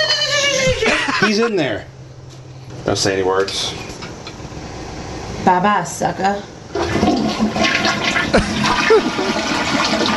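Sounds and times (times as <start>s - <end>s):
laughter: 0.0s - 1.5s, 8.4s - 9.5s
speech: 1.2s - 2.0s, 2.9s - 3.8s, 5.4s - 6.5s, 8.4s - 10.1s
toilet flushing: 6.7s - 10.1s.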